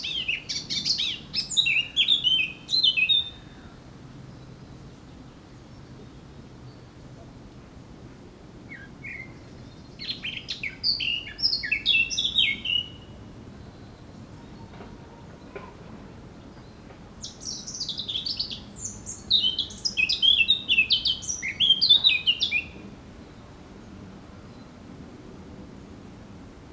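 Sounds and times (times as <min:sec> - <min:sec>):
Eurasian blackcap singing: 0:00.0 - 0:03.5, 0:08.7 - 0:13.2, 0:17.2 - 0:22.8.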